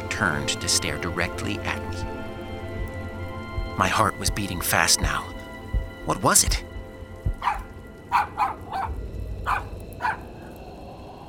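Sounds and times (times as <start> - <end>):
speech: 0.2 - 2.2, 3.8 - 5.4, 6.1 - 6.7
dog barking in short yaps: 7.4 - 10.3.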